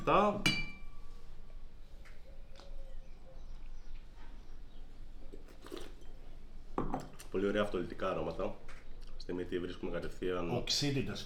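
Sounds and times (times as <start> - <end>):
speech: 0.0 - 0.6, 7.4 - 11.2
glasses of Blanc de Blancs Chardonnay wine clinking in a toast: 0.4 - 1.0.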